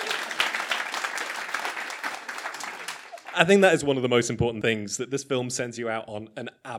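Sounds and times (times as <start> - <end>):
live audience applauding: 0.0 - 3.7
speech: 3.4 - 6.7.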